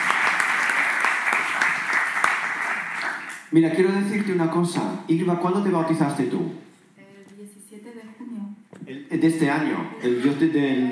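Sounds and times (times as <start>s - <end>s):
audience applause: 0.0s - 3.5s
speech: 3.5s - 6.6s, 9.2s - 10.9s.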